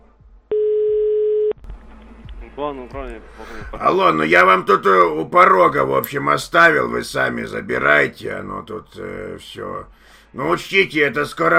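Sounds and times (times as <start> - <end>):
telephone tone beep while placing a call: 0.5 - 1.6
speech: 2.6 - 11.5.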